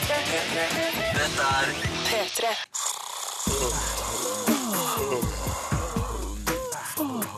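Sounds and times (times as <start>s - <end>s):
speech: 0.3s - 2.8s
person yawning loudly: 3.2s - 7.3s.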